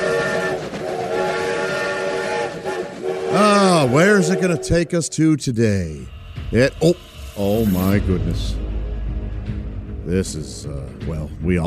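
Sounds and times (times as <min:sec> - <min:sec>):
sustained harmonic steam train whistle blowing: 0:00.0 - 0:05.0
steam-powered monorail train rumbling along: 0:00.0 - 0:11.6
speech: 0:03.8 - 0:08.6, 0:10.1 - 0:11.6.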